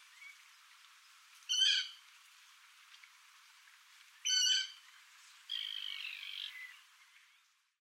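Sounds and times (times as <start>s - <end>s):
common moorhen squawking and croaking: 1.5s - 2.0s, 4.2s - 4.8s, 5.5s - 6.7s.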